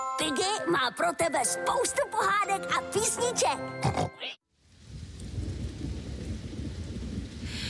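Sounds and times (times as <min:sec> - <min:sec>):
speech: 0:00.2 - 0:04.4
steady heavy rain falling outside: 0:04.6 - 0:07.6.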